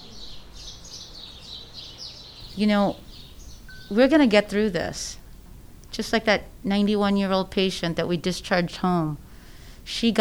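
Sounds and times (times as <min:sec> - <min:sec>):
birds singing in a high-pitched twittering chorus: 0:00.0 - 0:10.1
low rumble: 0:02.4 - 0:10.1
speech: 0:02.6 - 0:03.0, 0:03.9 - 0:05.2, 0:06.0 - 0:09.2, 0:09.9 - 0:10.1.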